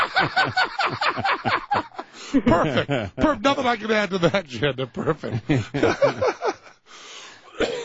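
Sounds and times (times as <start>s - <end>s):
laughter: 0.0s - 3.4s, 4.1s - 6.8s
speech: 0.2s - 6.4s
raspy breath: 2.0s - 2.4s, 6.8s - 7.6s
person coughing harshly: 2.3s - 2.9s, 7.5s - 7.8s.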